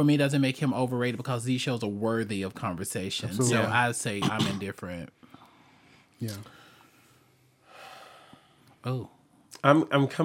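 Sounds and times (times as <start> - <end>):
speech: 0.0 - 5.2, 6.2 - 6.6, 8.8 - 10.2
deep audible gasping breath drawn in: 5.2 - 8.6.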